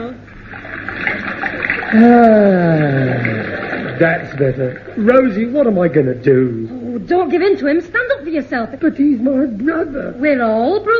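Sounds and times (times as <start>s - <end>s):
cold water splashing and trickling into a basin: 0.3s - 6.1s
drawn-out vocal sound: 1.8s - 5.1s
speech: 1.9s - 10.9s.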